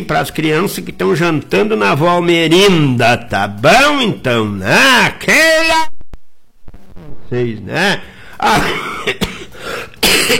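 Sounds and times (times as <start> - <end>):
speech: 0.0 - 5.9, 7.3 - 10.3
person coughing hard and raspy: 8.4 - 10.3.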